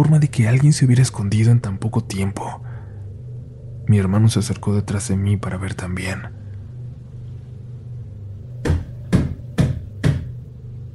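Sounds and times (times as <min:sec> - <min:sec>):
speech: 0:00.0 - 0:02.7, 0:03.9 - 0:06.4
low steady hum: 0:00.0 - 0:10.9
knocking on a wooden door: 0:08.6 - 0:10.4.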